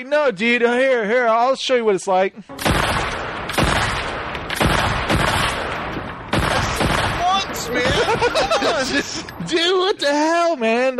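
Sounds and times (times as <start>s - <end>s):
speech: 0.0s - 2.7s, 7.7s - 10.9s
video game gunfire booming shots: 2.6s - 8.8s
laughter: 7.4s - 10.2s.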